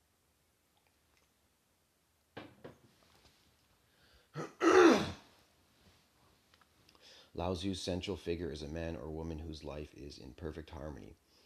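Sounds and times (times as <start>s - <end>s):
person clearing a clogged throat: 4.4s - 5.2s
speech: 7.3s - 11.2s.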